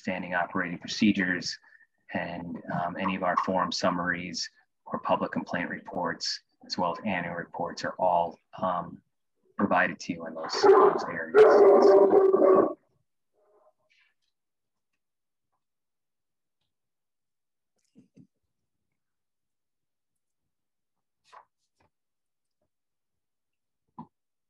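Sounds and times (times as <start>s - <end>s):
speech: 0.0s - 12.8s
dog barking: 10.5s - 12.8s.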